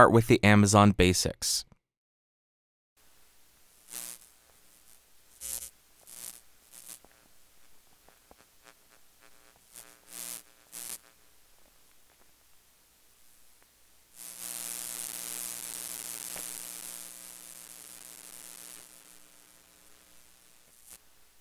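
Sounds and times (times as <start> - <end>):
speech: 0.0 - 1.7
harsh electrical interference buzz on an XLR cable: 3.0 - 11.3, 14.1 - 21.2
crackling bursts of static on an XLR cable: 3.0 - 21.4
electromagnetic interference hum picked up by XLR cable: 3.0 - 21.4.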